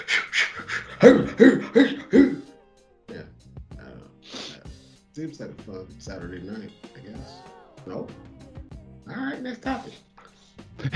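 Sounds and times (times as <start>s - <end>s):
person imitating a drug dog panting and sniffing: 0.0s - 2.6s
speech: 1.0s - 2.4s, 5.2s - 8.3s, 9.1s - 10.1s.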